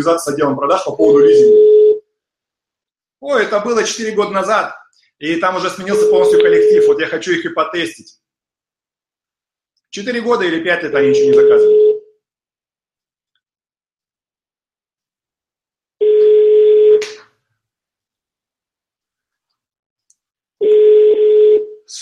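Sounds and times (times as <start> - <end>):
speech: 0.0 - 1.8, 3.2 - 8.2, 9.9 - 11.8
telephone line tones on a call to a company: 1.1 - 2.0, 5.9 - 7.0, 16.0 - 17.0, 20.6 - 21.7.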